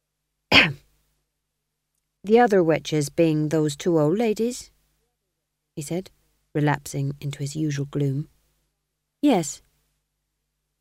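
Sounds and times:
man coughing: 0.5s - 0.8s
speech: 2.2s - 4.7s, 5.8s - 8.3s, 9.2s - 9.7s.

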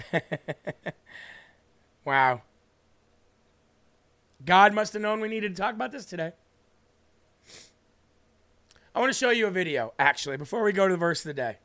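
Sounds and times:
speech: 0.1s - 0.8s, 2.1s - 2.5s, 4.4s - 6.4s, 7.4s - 7.7s, 9.0s - 11.6s
breathy nasal sniffle after crying: 7.4s - 7.8s.

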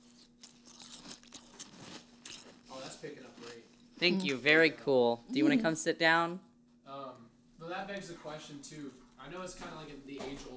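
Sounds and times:
crunching dry Fruity Pebbles cereal into microphone: 0.0s - 3.6s
faint constant hum: 0.0s - 10.5s
speech: 3.0s - 6.5s, 7.8s - 10.5s.

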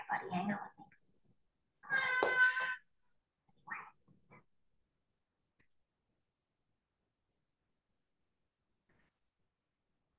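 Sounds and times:
speech: 0.2s - 0.8s
cat yowling: 1.8s - 2.8s.

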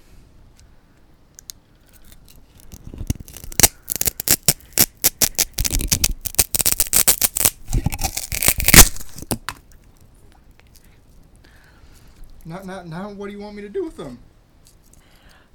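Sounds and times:
cutting through a block of styrofoam: 2.7s - 9.4s
speech: 12.5s - 14.3s.

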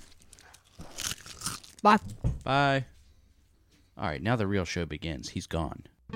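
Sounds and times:
person biting into a crisp potato chip: 0.2s - 1.9s
speech: 1.8s - 2.9s, 4.0s - 5.9s.

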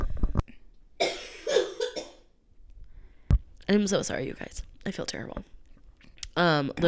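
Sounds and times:
person letting out harsh raspy coughs: 1.0s - 2.3s
speech: 3.7s - 5.5s, 6.4s - 6.8s.

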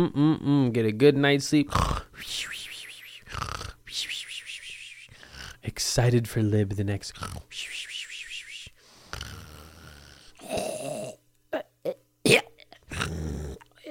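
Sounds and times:
speech: 0.0s - 2.6s, 3.3s - 4.2s, 5.7s - 7.8s
person imitating their own snoring with their voice: 1.7s - 3.9s, 5.1s - 5.7s, 7.1s - 7.6s, 9.0s - 11.2s, 12.9s - 13.8s.

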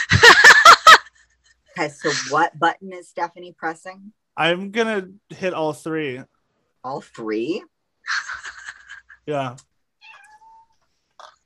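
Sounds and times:
laughter: 0.0s - 1.2s, 8.1s - 9.5s
speech: 1.8s - 8.2s, 9.3s - 9.7s
cat meowing: 10.0s - 10.8s.

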